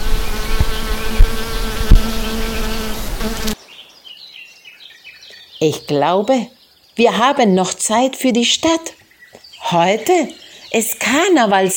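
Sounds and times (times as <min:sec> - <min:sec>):
bee buzzing: 0:00.0 - 0:03.6
speech: 0:05.6 - 0:09.0, 0:09.6 - 0:11.7.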